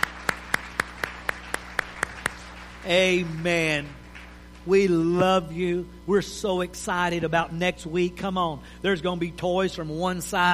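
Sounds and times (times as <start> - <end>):
church audience clapping in time: 0.0 - 5.0
speech: 2.8 - 4.0, 4.7 - 10.5.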